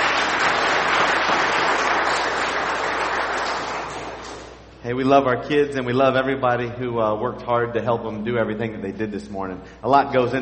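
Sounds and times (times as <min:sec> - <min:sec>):
sizable crowd applauding: 0:00.0 - 0:04.6
speech: 0:04.9 - 0:10.4.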